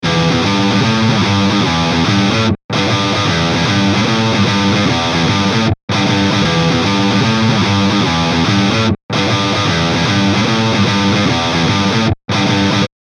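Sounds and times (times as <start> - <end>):
electric guitar on neck pickup through amplifier: 0.0 - 12.9.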